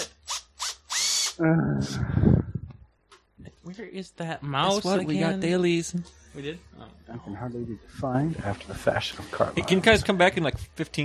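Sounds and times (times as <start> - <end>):
power drill whirring: 0.0 - 2.0
speech: 1.4 - 2.4, 3.8 - 11.0.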